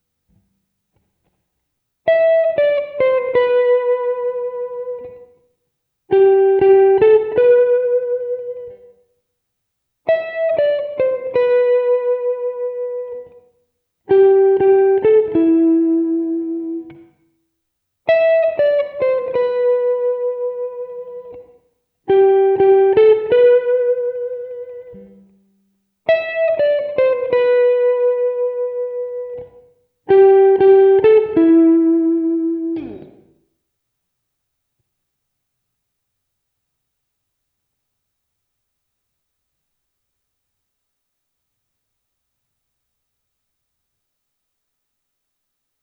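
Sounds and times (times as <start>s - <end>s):
lush guitar: 2.1s - 5.5s, 6.1s - 9.1s, 10.1s - 17.3s, 18.1s - 33.5s.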